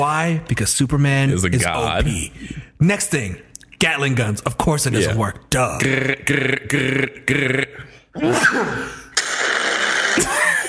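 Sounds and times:
speech: 0:00.0 - 0:09.0, 0:10.2 - 0:10.4
loud drawn-out sneeze: 0:08.2 - 0:09.1.

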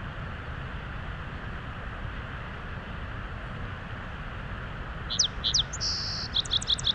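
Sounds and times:
faint hiss: 0:00.0 - 0:06.9
song sparrow singing: 0:05.1 - 0:06.9.

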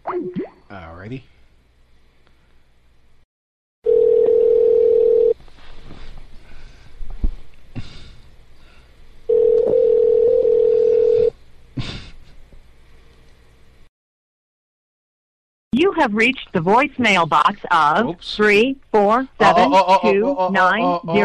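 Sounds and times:
speech: 0:01.0 - 0:01.4, 0:16.0 - 0:21.2
telephone ringback tones: 0:03.9 - 0:05.4, 0:09.3 - 0:11.3.

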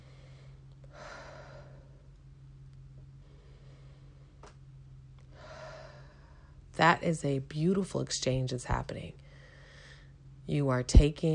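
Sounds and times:
deep breathing during a guided breathing exercise: 0:00.0 - 0:02.1, 0:03.1 - 0:04.4, 0:05.3 - 0:06.6, 0:09.2 - 0:10.3
constant low hum: 0:00.0 - 0:11.3
speech: 0:06.8 - 0:09.2, 0:10.5 - 0:11.3.

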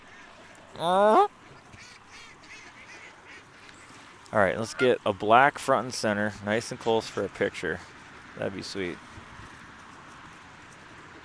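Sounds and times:
speech: 0:00.8 - 0:01.3, 0:04.3 - 0:09.1
black duck with a short black bill quacking: 0:00.8 - 0:03.7.

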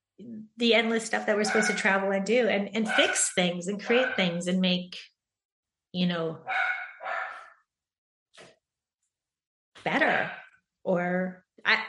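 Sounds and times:
speech: 0:00.2 - 0:05.1, 0:06.0 - 0:06.8, 0:09.8 - 0:11.8
puppy barking: 0:01.4 - 0:01.9, 0:06.5 - 0:07.6.

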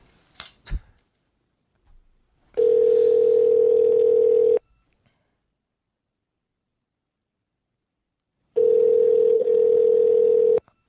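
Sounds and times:
outgoing telephone call ringback tones: 0:02.6 - 0:04.6, 0:08.6 - 0:10.6.

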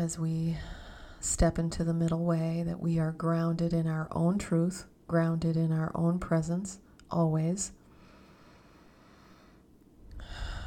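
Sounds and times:
speech: 0:00.0 - 0:07.8
deep breath in: 0:07.9 - 0:10.6.

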